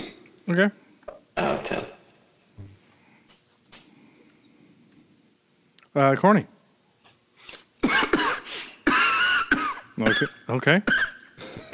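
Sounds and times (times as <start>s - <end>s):
speech: 0.5s - 0.8s, 6.0s - 6.6s, 10.0s - 11.1s
faint breaths: 2.5s - 5.4s, 6.9s - 7.8s
person coughing hard: 7.8s - 11.7s.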